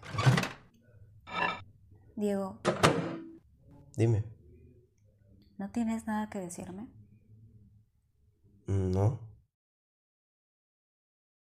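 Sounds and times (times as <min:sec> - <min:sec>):
speech: 0:02.2 - 0:03.1, 0:04.0 - 0:04.3, 0:05.6 - 0:07.0, 0:08.7 - 0:09.2
microwave door shutting with a firm thunk: 0:02.7 - 0:03.3.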